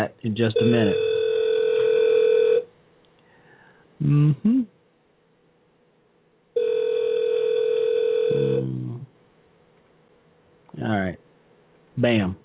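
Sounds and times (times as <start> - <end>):
speech: 0.0 - 1.1, 4.0 - 4.8, 10.8 - 11.2, 12.0 - 12.4
phone ringing from an incoming call: 0.6 - 2.7, 6.6 - 8.7.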